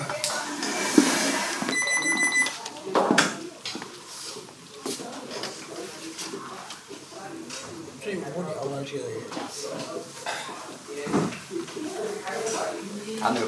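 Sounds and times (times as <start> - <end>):
faint voices: 0.0 - 13.4
man's wristwatch alarm beeping: 1.7 - 2.6
speech: 8.9 - 10.2, 13.2 - 13.4.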